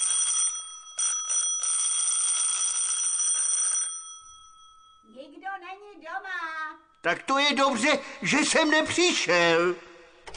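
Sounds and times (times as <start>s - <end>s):
electric doorbell buzz-ring: 0.0s - 5.2s
speech: 5.6s - 9.9s.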